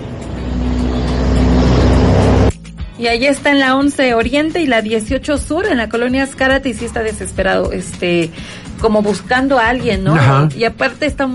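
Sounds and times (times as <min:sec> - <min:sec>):
car engine roaring past fast on a street in colonia Escárate: 0:00.0 - 0:02.6
speech: 0:03.0 - 0:11.3.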